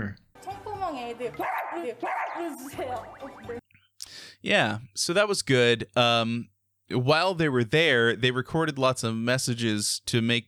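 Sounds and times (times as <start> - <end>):
speech: 0.9 - 3.6, 4.4 - 10.4
crowd of fans imitating dog barking: 1.4 - 3.6
excited voices and squeals: 1.4 - 3.6.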